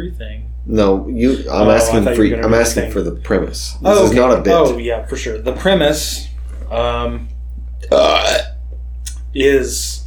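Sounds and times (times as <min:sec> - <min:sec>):
speech: 0:00.0 - 0:08.5, 0:09.3 - 0:10.0
steady low hum: 0:00.0 - 0:10.0
loud croaking burp: 0:07.8 - 0:08.6.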